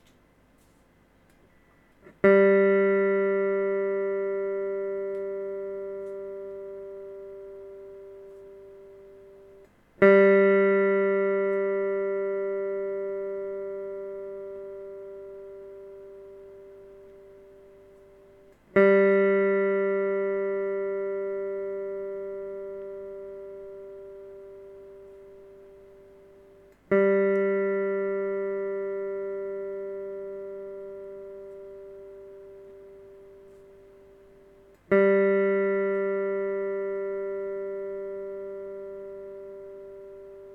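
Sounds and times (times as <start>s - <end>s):
electric guitar third string G being tuned: 2.0s - 40.5s.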